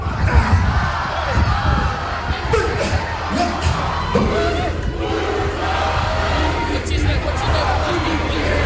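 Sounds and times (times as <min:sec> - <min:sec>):
large group chanting and shouting a haka-style war cry in unison: 0:00.0 - 0:08.6
loud continuous crowd roar with cheering: 0:00.0 - 0:08.6.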